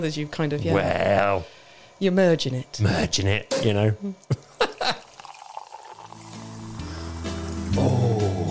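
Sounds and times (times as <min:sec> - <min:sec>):
speech: 0:00.0 - 0:05.0
Sekt sparkling wine poured into a glass: 0:04.5 - 0:08.4.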